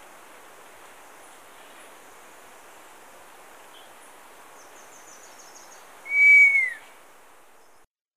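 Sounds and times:
scaled fruiteater uttering a long thin high whistle in Ecuador: 6.0 - 6.8.

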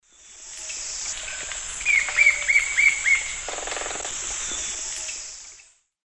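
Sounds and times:
Celeus flavus drumming: 0.8 - 4.8
Celeus flavus call: 1.8 - 4.6.

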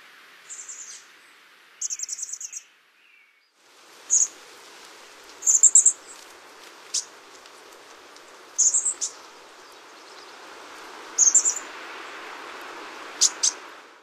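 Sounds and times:
steady background hiss: 0.0 - 14.0
chestnut-backed chickadee giving buzzy bursts of rapid notes: 1.8 - 2.7, 4.1 - 4.4, 5.4 - 6.2, 6.8 - 7.2, 8.5 - 10.4, 11.1 - 11.7, 13.1 - 13.7.

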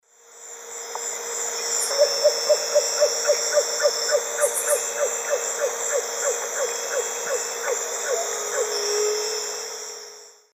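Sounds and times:
Asio clamator song or call: 1.8 - 9.3.

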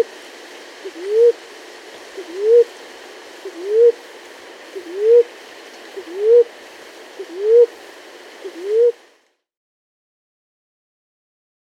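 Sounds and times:
Maroon-chested ground dove calling mellow rising hoots in South America: 0.8 - 1.4, 2.2 - 2.8, 3.4 - 4.1, 4.7 - 5.3, 5.9 - 6.6, 7.2 - 7.8, 8.4 - 9.0.

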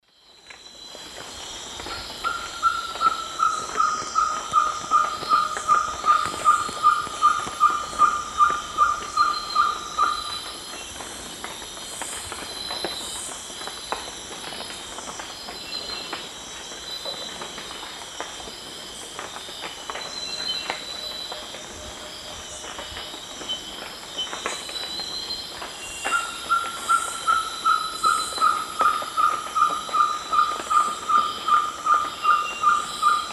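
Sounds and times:
Glaucidium brasilianum singing in the Eastern Lowlands of South America: 2.2 - 10.5, 25.9 - 33.3.

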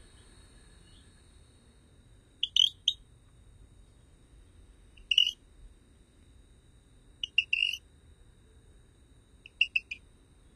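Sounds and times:
Rio Grande chirping frog giving high chirps in North America: 2.4 - 3.0, 5.0 - 5.4, 7.2 - 7.8, 9.4 - 10.0.

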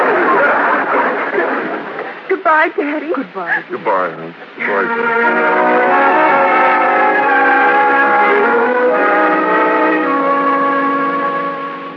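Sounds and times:
laughter: 0.0 - 2.3
speech: 2.6 - 6.9
departing train horn blaring: 4.7 - 11.9.

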